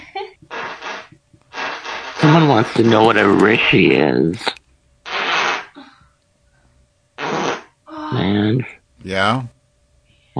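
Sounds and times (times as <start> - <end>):
raspy fart sounds played back from a video: 0.5 - 3.2, 4.4 - 5.8, 7.2 - 7.8
speech: 2.4 - 4.6, 8.2 - 9.6.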